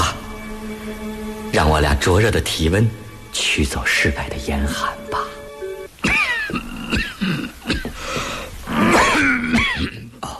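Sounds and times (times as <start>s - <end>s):
speech: 1.6s - 5.0s
man coughing: 6.0s - 8.0s, 8.9s - 10.3s
man's wheezy breaths: 8.0s - 8.6s.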